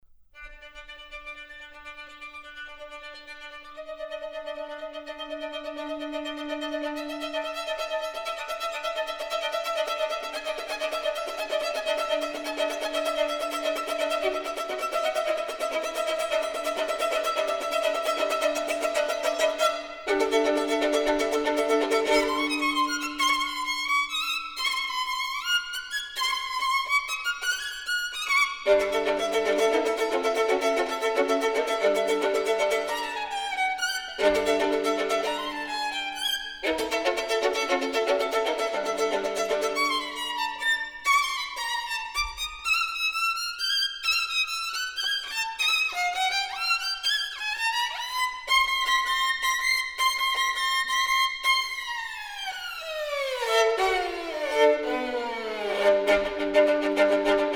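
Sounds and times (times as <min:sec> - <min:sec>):
solo violin piece: 0:00.4 - 0:57.5.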